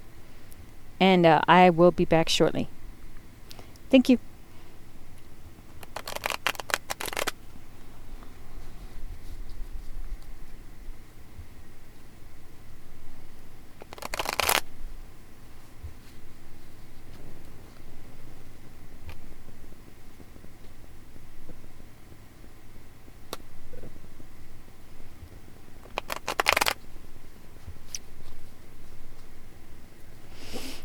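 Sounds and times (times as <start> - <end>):
speech: 1.0 - 2.8, 3.9 - 4.3
deck of tarot cards shuffled in crisp riffling bursts: 5.8 - 7.4, 13.8 - 14.7, 25.8 - 26.8.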